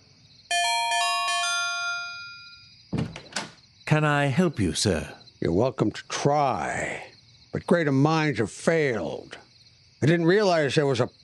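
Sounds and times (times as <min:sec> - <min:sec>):
doorbell at a house door chiming a descending run: 0:00.5 - 0:02.7
dull thumps: 0:02.9 - 0:03.5
speech: 0:03.9 - 0:09.4, 0:10.0 - 0:11.2.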